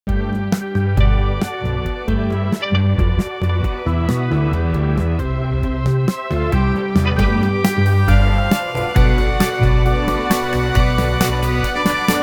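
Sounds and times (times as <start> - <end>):
romantic dance songs: 0.2 - 12.2.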